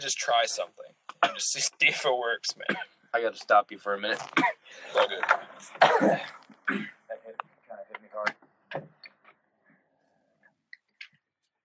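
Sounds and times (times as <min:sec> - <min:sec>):
speech: 0:00.0 - 0:07.0
person clearing throat: 0:01.2 - 0:01.5, 0:02.6 - 0:03.0, 0:04.1 - 0:07.2
person coughing hard: 0:01.2 - 0:01.6, 0:02.6 - 0:03.0, 0:04.1 - 0:07.1.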